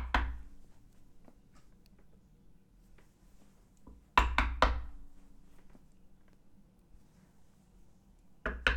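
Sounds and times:
sharp knocks on a wooden door: 0.0s - 0.4s, 4.2s - 5.0s, 8.5s - 8.7s.

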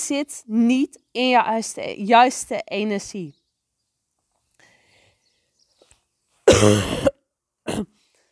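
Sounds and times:
speech: 0.1s - 3.4s, 6.6s - 7.0s
harsh rasping cough: 6.4s - 8.0s.

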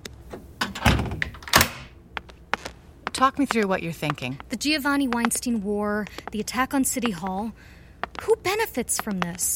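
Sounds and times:
door lock clicking: 0.3s - 1.9s
speech: 3.2s - 9.5s.

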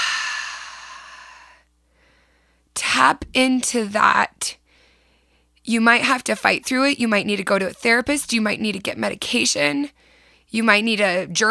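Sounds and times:
long deep breath exhale: 0.0s - 2.6s
speech: 3.0s - 4.6s, 5.6s - 11.4s.

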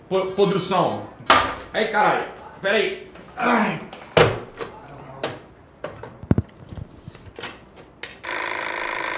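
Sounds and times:
speech: 0.1s - 4.0s
telephone ringing with an incoming call: 8.2s - 9.1s.

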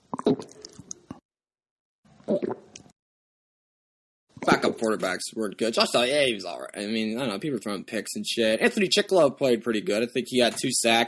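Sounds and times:
gulping and swallowing water: 0.0s - 1.2s, 2.2s - 2.8s
mouth smacking: 0.0s - 1.2s, 2.3s - 2.9s
speech: 2.3s - 2.5s, 4.7s - 11.0s.

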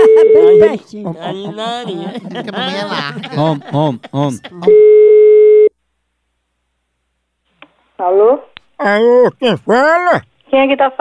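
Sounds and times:
laughter: 0.0s - 4.8s, 8.8s - 10.3s
speech: 0.6s - 5.3s, 8.0s - 11.0s
telephone call ringing tone: 4.7s - 5.7s.

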